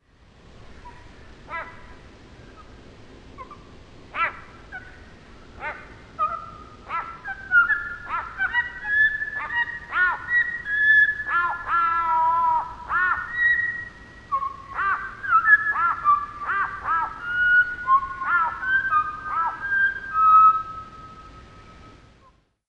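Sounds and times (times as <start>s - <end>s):
grey fantail calls slowed four times: 0.7s - 22.4s.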